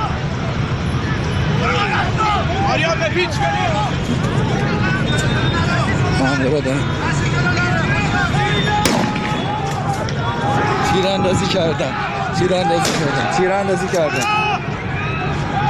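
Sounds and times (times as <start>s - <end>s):
crowd of protesters shouting and chanting at a street protest in Azadi: 0.0s - 15.6s
gunshots at a street protest in Azadi: 8.8s - 9.8s, 12.8s - 13.3s.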